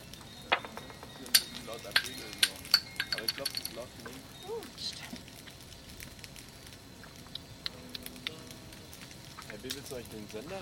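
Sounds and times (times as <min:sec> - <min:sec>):
faint voices murmuring: 0:00.0 - 0:05.5, 0:06.8 - 0:10.6
campfire crackling with pops and snaps: 0:00.0 - 0:10.6
speech: 0:01.8 - 0:02.5, 0:03.2 - 0:05.3, 0:09.6 - 0:10.6.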